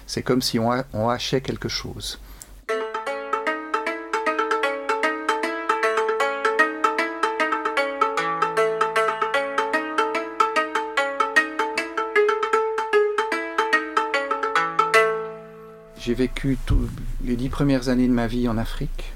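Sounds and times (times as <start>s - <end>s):
speech: 0.1s - 2.3s, 16.1s - 19.1s
hammered dulcimer strings struck with small sticks: 2.6s - 18.7s
low sustained bass tone: 15.1s - 19.1s.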